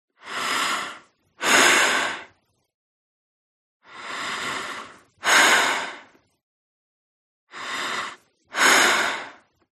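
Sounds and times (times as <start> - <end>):
woman breathing deeply: 0.2 - 2.4, 3.8 - 6.2, 7.5 - 9.6.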